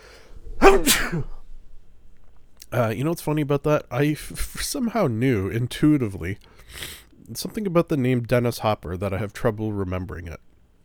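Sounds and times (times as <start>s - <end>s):
sneeze: 0.4s - 1.6s
speech: 0.7s - 1.4s, 2.7s - 10.5s.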